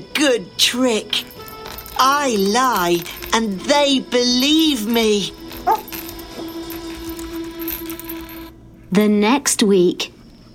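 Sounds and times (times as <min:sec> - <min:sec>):
speech: 0:00.0 - 0:01.3, 0:02.0 - 0:05.9, 0:08.9 - 0:10.1
dog barking: 0:05.6 - 0:06.5.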